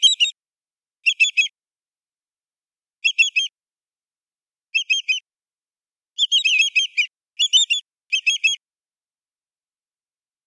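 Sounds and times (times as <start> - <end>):
greater yellowlegs calling with ringing whistled phrases: 1.0 - 1.5, 3.0 - 3.5, 4.8 - 5.2, 6.2 - 8.6.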